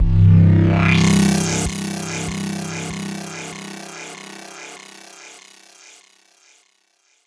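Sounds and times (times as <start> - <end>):
pink width modulation synth zap in C for psytrance: 0.1 - 4.9.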